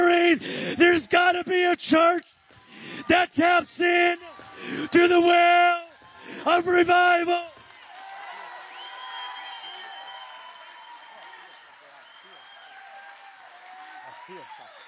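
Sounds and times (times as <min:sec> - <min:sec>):
speech: 0:00.3 - 0:07.5
crowd cheering at a church revival worship service: 0:02.2 - 0:14.8
crowd clapping at a church revival worship service: 0:03.9 - 0:14.8.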